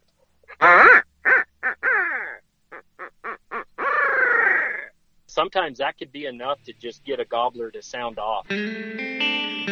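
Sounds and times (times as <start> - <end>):
human voice imitating a barred owl call with a laughing finish for turkey hunting: 0.6 - 2.4, 3.5 - 4.9
speech: 5.4 - 9.7.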